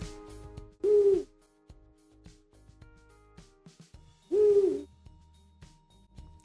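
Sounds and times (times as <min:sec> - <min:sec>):
Eurasian eagle-owl hooting: 0:00.8 - 0:01.3, 0:04.3 - 0:04.9.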